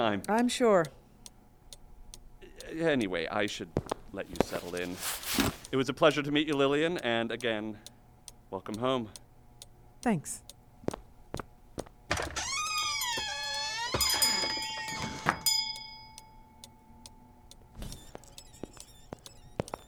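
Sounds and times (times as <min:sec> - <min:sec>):
speech: 0:00.0 - 0:01.0, 0:02.7 - 0:07.9, 0:08.5 - 0:09.2, 0:10.0 - 0:10.4
clock-like ticking: 0:00.0 - 0:19.8
door chime ringing: 0:12.3 - 0:19.8.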